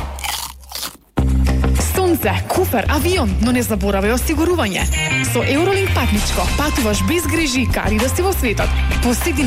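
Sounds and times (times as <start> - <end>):
crunching bites of air-popped chips: 0.1 - 1.2
speech: 2.2 - 9.4.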